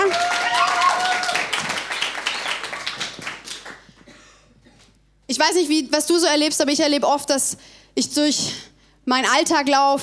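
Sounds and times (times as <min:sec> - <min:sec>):
audience applauding a performer's musical playing: 0:00.0 - 0:03.9
speech: 0:05.4 - 0:10.0.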